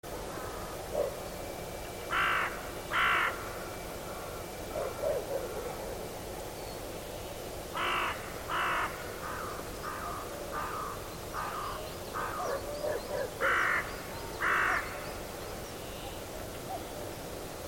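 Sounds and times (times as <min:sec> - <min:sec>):
steady background noise: 0:00.0 - 0:17.6
bird giving harsh caws: 0:02.1 - 0:03.4, 0:07.8 - 0:12.4, 0:14.4 - 0:14.9.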